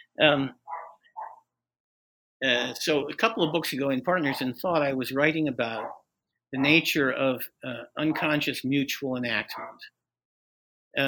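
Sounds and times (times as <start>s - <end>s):
speech: 0.2s - 0.6s, 2.4s - 10.0s
dog barking: 0.7s - 1.4s, 5.8s - 6.0s, 6.6s - 6.8s, 8.1s - 8.4s, 9.5s - 9.9s.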